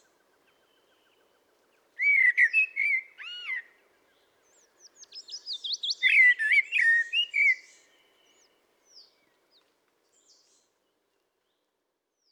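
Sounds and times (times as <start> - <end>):
Common blackbird singing, Turdus merula: 2.0 - 3.6, 4.5 - 9.1.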